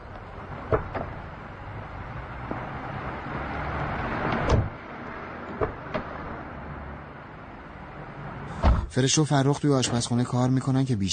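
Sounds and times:
steady outdoor rumble outside a psychologist's office: 0.0 - 9.0
car doors shutting as people get into a car: 0.1 - 1.3, 3.7 - 6.5, 8.5 - 9.0
speech: 9.0 - 11.1.

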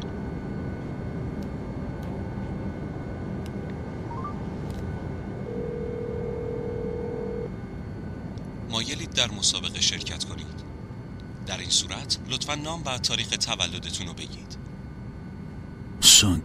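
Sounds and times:
constant low hum of noise on an airplane boarding bridge: 0.0 - 16.4
steady mobile phone tone: 5.4 - 7.5
speech: 8.8 - 10.7, 11.5 - 14.7, 16.0 - 16.4.

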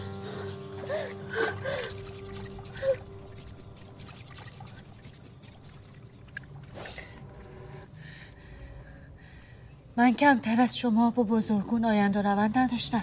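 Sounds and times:
water dripping into a pool: 0.8 - 7.6
woman washing her hand in pool water: 1.6 - 7.0
speech: 10.0 - 13.0.

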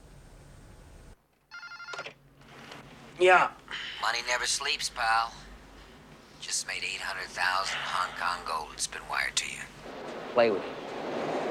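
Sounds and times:
low hum: 0.0 - 10.8
telephone ringing with electronic trill: 1.5 - 2.2
speech: 3.2 - 5.4, 6.5 - 10.8.

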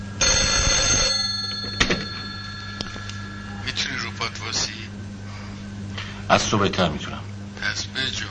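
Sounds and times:
telephone bell ringing with a bright metallic trill: 0.1 - 4.3
speech: 6.3 - 8.1.

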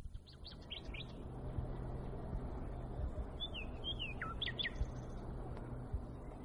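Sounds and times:
nightingale singing: 0.0 - 1.2, 3.3 - 5.3
steady low rumble: 0.0 - 6.4.

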